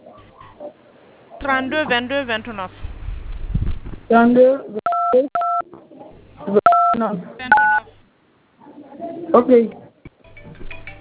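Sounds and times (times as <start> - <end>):
speech: 1.4 - 2.9, 4.1 - 5.3, 6.4 - 7.8, 9.3 - 9.8
telephone keypad DTMF dialing tones: 4.9 - 5.6, 6.7 - 7.9.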